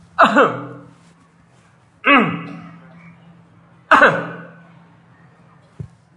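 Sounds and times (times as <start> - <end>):
man deliberately clearing his throat: 0.2 - 0.9, 2.0 - 2.9, 3.9 - 4.6
faint tap: 5.7 - 6.0.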